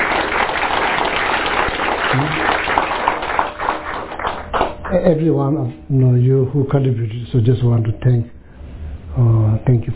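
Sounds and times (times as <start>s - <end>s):
crowd applauding: 0.0s - 5.0s
speech: 4.9s - 8.4s, 9.2s - 9.9s.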